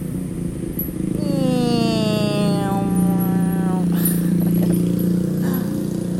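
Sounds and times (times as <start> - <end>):
motorcycle engine idling: 0.0 - 6.1.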